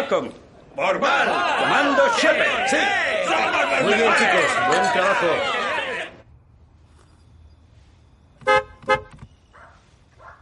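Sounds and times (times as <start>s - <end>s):
speech: 0.1s - 5.7s
faint murmuring voices: 0.9s - 6.2s
car horn honking: 8.4s - 9.2s.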